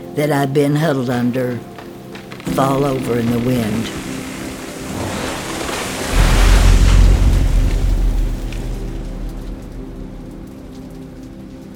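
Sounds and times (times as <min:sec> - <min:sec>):
speech: 0:00.2 - 0:01.7, 0:02.5 - 0:04.1
heavy rain: 0:02.2 - 0:11.7
deep rumbling surge: 0:02.8 - 0:11.7.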